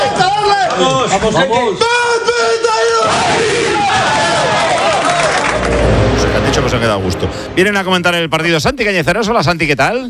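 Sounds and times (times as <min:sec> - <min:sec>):
speech: 0:00.2 - 0:04.2, 0:06.0 - 0:10.0
football team players roaring a battle cry in a locker room: 0:02.4 - 0:05.4.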